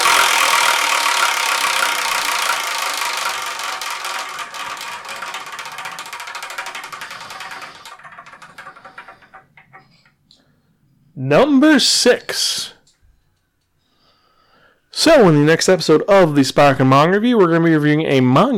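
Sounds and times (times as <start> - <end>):
spun prize wheel ticking: 0.0 - 10.0
speech: 11.3 - 12.7, 15.0 - 18.5.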